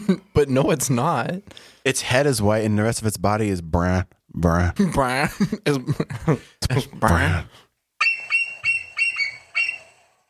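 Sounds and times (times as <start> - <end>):
speech: 0.1 - 7.6
bald eagle screeching: 8.0 - 10.1.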